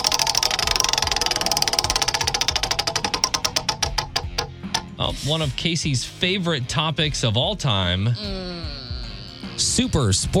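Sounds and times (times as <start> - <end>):
prize wheel on a trivia game show spinning: 0.0 - 4.9
speech: 5.2 - 8.8, 9.6 - 10.3.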